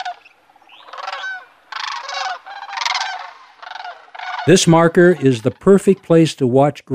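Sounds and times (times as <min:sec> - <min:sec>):
cranes trumpeting and bugling: 0:00.0 - 0:06.2
speech: 0:04.5 - 0:06.9.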